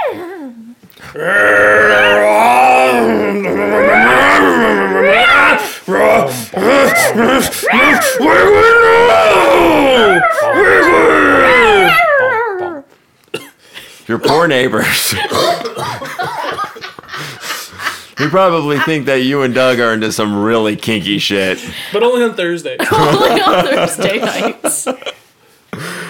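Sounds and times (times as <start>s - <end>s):
person voicing ogre yells, growls, roaring and groaning: 0.1s - 12.8s
speech: 1.1s - 1.5s, 14.5s - 15.9s, 18.2s - 24.5s
laughter: 14.9s - 19.8s, 22.8s - 25.2s.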